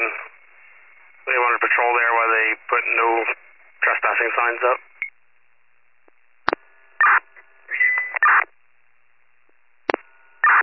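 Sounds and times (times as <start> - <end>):
two-way radio static: 0.0 - 5.0, 6.5 - 8.5, 9.9 - 10.6
speech: 1.8 - 4.9.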